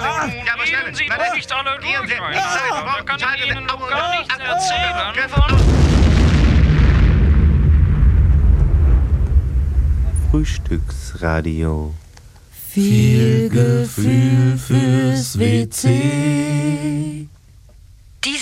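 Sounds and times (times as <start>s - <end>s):
speech: 0.2s - 5.9s, 10.4s - 12.0s, 12.8s - 17.3s
bomb exploding with long dense rumbling roar: 5.4s - 11.4s.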